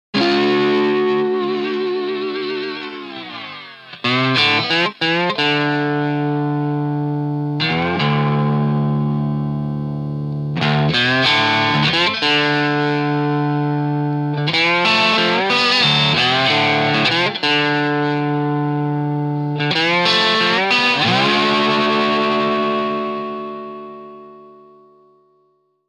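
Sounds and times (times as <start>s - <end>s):
slide guitar without EQ: 0.2s - 25.2s.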